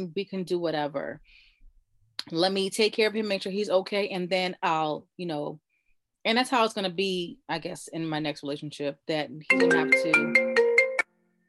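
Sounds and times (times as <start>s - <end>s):
speech: 0.0s - 1.4s, 2.2s - 5.6s, 6.2s - 10.4s
computer notification chime: 9.5s - 11.0s.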